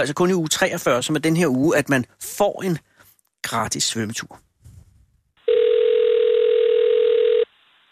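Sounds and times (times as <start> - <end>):
speech: 0.0 - 4.5
telephone ringing tone on outgoing call: 5.4 - 7.5.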